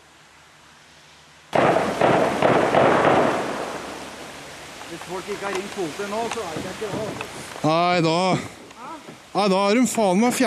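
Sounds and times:
volley of loud gunshots with ringing echo: 1.5 - 4.0
speech: 5.0 - 8.6, 9.4 - 10.4.

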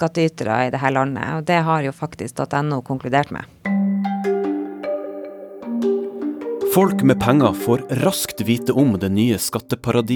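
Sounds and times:
speech: 0.0 - 3.6, 6.8 - 10.1
phone ringing with a melodic electronic tune: 3.7 - 9.4.

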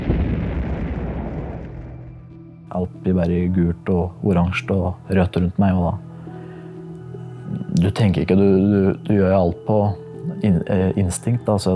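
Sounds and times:
powerful silo explosion boom: 0.0 - 2.5
speech: 2.7 - 6.1, 7.8 - 11.7.

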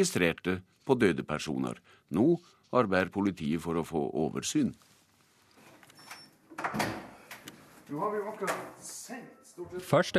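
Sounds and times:
speech: 0.0 - 4.9, 6.6 - 7.0, 7.9 - 10.1
heavy locked doors opening and closing at a police station: 6.0 - 7.4.

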